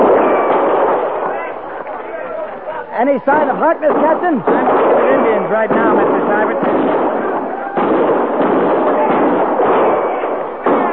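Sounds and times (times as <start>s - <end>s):
sharp gunshot reports at range: 0.0s - 2.1s, 3.0s - 10.9s
dense crackle of guns firing at range: 0.0s - 10.9s
speech: 3.0s - 6.8s.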